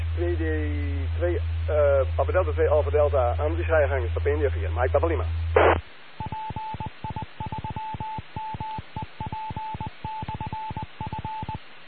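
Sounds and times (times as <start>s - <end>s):
speech: 0.2s - 5.8s
telephone keypad tones dialing a check-in line: 6.2s - 11.6s.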